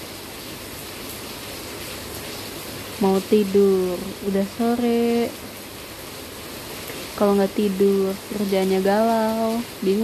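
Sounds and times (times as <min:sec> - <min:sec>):
rain falling outdoors in the afternoon: 0:00.0 - 0:10.0
speech: 0:03.0 - 0:05.6, 0:07.2 - 0:10.0.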